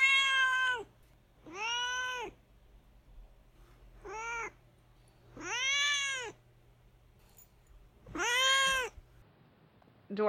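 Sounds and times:
cat meowing: 0.0s - 2.4s, 4.0s - 4.6s, 5.4s - 6.4s, 8.1s - 9.0s.

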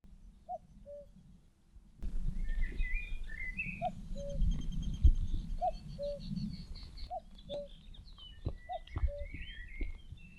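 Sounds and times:
common cuckoo calling: 0.5s - 1.2s, 2.4s - 10.3s
small birds chattering in alarm: 2.4s - 10.3s.

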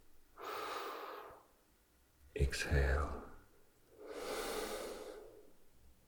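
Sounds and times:
slow deep inhale during a guided relaxation exercise: 0.4s - 1.5s, 4.0s - 5.6s
speech: 2.5s - 3.2s.

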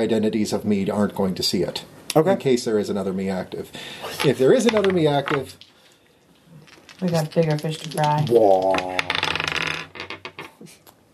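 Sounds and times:
speech: 0.0s - 5.7s, 7.0s - 9.2s
dice clattering across a hard table: 4.2s - 5.7s, 6.6s - 10.6s.

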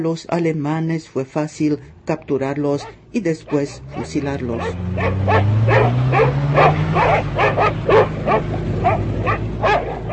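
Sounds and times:
speech: 0.0s - 9.4s
low engine-like drone: 1.6s - 10.1s
dogs barking during a manhunt: 2.7s - 10.1s.

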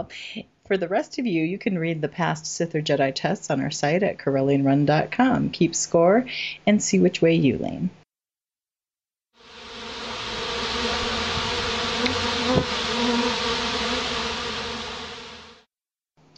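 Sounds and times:
speech: 0.0s - 8.0s
bee-buzzing sound effect: 9.4s - 15.7s.

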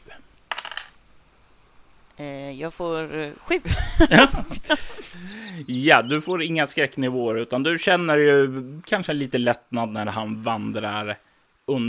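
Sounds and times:
die rolled across a hard tabletop for a game check: 0.5s - 1.0s
speech: 2.2s - 11.8s
laughter: 3.6s - 5.7s.

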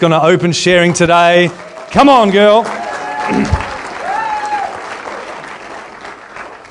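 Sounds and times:
speech: 0.0s - 3.6s
room full of people applauding: 1.2s - 6.6s
people cheering: 1.3s - 6.6s.

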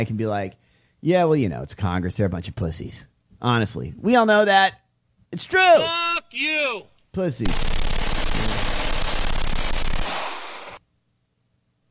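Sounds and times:
speech: 0.0s - 8.6s
rapid gunfire bursts: 7.5s - 10.8s.

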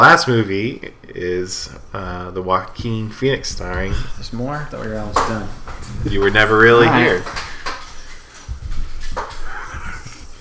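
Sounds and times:
speech: 0.0s - 7.5s
dogs shuffling in a room: 0.0s - 10.4s
low thumping movement: 1.3s - 10.4s
dogs whimpering in a room: 3.6s - 10.4s.

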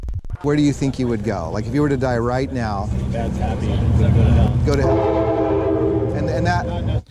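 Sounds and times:
speech: 0.4s - 5.3s, 6.4s - 7.0s
low rumble from train tracks in Oceanside: 0.6s - 7.0s
train horn blast in Oceanside: 1.5s - 7.0s.

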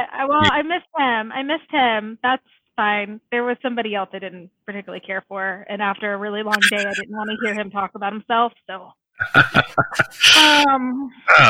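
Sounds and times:
speech: 0.0s - 11.4s
laughter: 9.2s - 10.6s
person sneezing: 9.9s - 10.6s.

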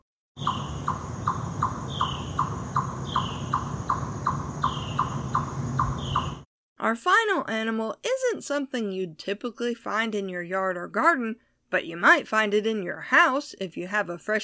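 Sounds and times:
eastern chipmunk chipping: 0.4s - 6.4s
speech: 6.8s - 14.4s.

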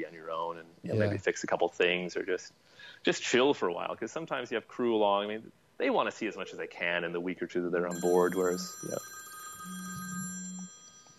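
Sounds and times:
speech: 0.0s - 9.1s
faint hum: 0.0s - 11.1s
single electronic telephone ring from a junk phone call: 7.9s - 11.1s.

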